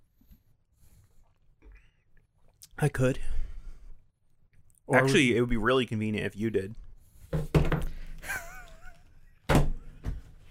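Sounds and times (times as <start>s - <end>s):
speech: 2.8s - 3.4s, 4.9s - 7.5s
phone and headphones being set down on a hard surface: 7.3s - 8.1s.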